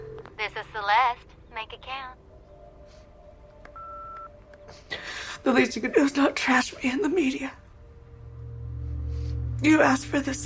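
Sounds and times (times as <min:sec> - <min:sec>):
low hum: 0:00.0 - 0:10.4
speech: 0:00.4 - 0:02.2, 0:04.7 - 0:07.6, 0:09.6 - 0:10.4
telephone keypad tone: 0:03.7 - 0:04.4.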